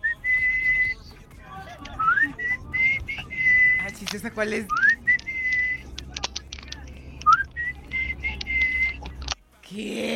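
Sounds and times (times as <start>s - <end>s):
person whistling clear sustained tones with upward slides: 0.0s - 1.1s, 2.0s - 3.9s, 4.7s - 5.9s, 7.2s - 9.0s
speech: 4.1s - 4.8s, 9.8s - 10.1s.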